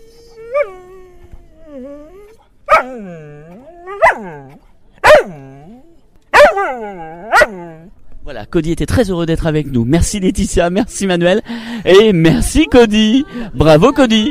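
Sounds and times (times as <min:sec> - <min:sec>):
dog drawn-out whining howl: 0:00.0 - 0:07.9
speech: 0:00.6 - 0:00.9, 0:02.8 - 0:03.6, 0:08.5 - 0:14.2
dog barking: 0:02.7 - 0:03.0, 0:03.9 - 0:05.4, 0:06.3 - 0:07.6.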